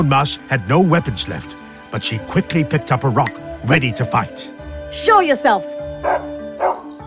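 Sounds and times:
speech: 0:00.0 - 0:06.3
dog barking: 0:06.0 - 0:06.9.

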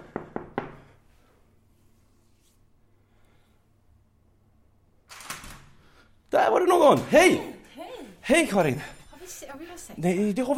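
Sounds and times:
knocking on the door of a home: 0:00.0 - 0:00.9
speech: 0:06.4 - 0:07.5, 0:08.3 - 0:10.5.

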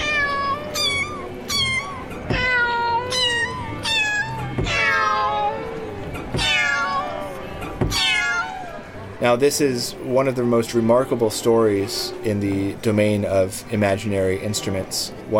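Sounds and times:
cat meows at shifting pitches strung together like a tune: 0:00.0 - 0:08.9
speech: 0:09.2 - 0:15.3.

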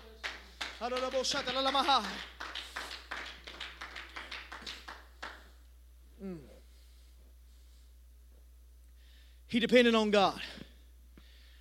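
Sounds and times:
people clapping hands in a steady rhythmic beat: 0:00.0 - 0:05.7
speech: 0:00.8 - 0:02.4, 0:06.2 - 0:06.5, 0:09.5 - 0:10.6.

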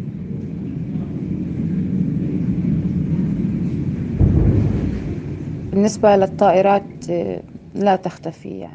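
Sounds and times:
warplanes flying overhead: 0:00.0 - 0:08.0
distant explosions: 0:03.8 - 0:07.8.

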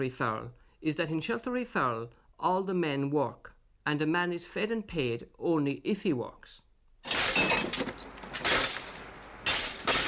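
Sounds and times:
speech: 0:00.0 - 0:07.6
glass bottles being smashed for recycling: 0:07.0 - 0:10.0.

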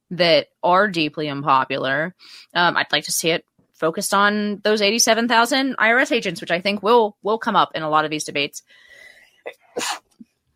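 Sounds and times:
speech: 0:00.1 - 0:10.0
person sneezing: 0:09.8 - 0:10.2.

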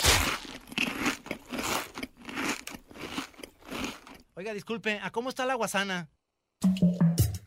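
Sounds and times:
potato chips being bitten and chewed: 0:00.0 - 0:04.3
speech: 0:04.5 - 0:07.1.

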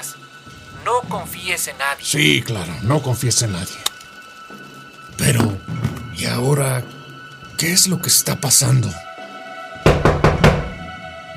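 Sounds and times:
speech: 0:00.8 - 0:03.9, 0:06.4 - 0:07.0, 0:07.6 - 0:09.1
knocking on a door: 0:09.8 - 0:10.8.

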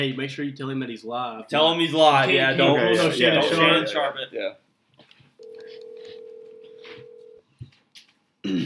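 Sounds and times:
speech: 0:00.0 - 0:04.6
steady telephone dial tone on speakerphone: 0:05.4 - 0:07.4.

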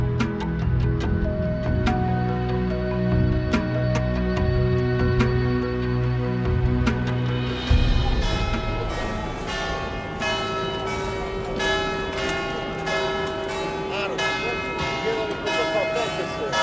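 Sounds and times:
ambient city noise in Venice: 0:00.0 - 0:16.6
large church bells of St Mark's Campanile in Venice pealing: 0:00.0 - 0:16.6
faint crowd murmur in Venice: 0:07.6 - 0:16.6.

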